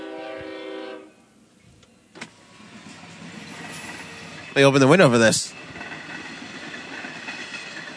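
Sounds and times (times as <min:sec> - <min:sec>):
train horn blast: 0:00.0 - 0:01.3
train rumbling past outside: 0:00.0 - 0:07.9
speech: 0:04.6 - 0:05.6.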